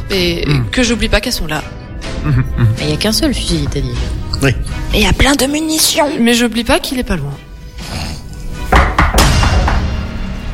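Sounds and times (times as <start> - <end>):
speech: 0.1 - 8.0
solid knocks and softer taps on a door: 8.7 - 10.0.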